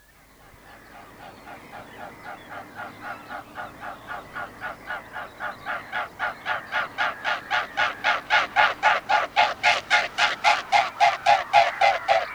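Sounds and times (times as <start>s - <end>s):
mute swan wingbeats: 0.5s - 12.3s.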